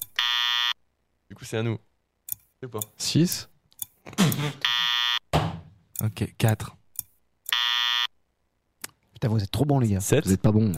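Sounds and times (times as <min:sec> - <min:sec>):
quiz game buzzer electronic buzz: 0:00.2 - 0:00.8, 0:04.6 - 0:05.2, 0:07.5 - 0:08.1
speech: 0:01.3 - 0:01.9, 0:02.6 - 0:04.8, 0:06.0 - 0:06.8, 0:09.2 - 0:10.7.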